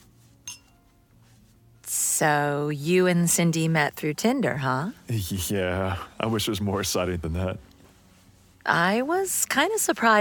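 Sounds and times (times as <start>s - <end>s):
glasses clinking in a toast: 0.4s - 0.8s
speech: 2.2s - 7.7s, 8.7s - 10.1s.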